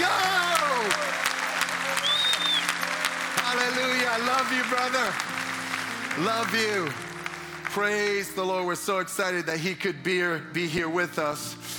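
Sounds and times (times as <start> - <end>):
large crowd applauding and cheering: 0.0 - 9.4
sharp whistles: 2.0 - 2.8
speech: 4.2 - 5.3, 6.1 - 7.0, 7.7 - 11.6.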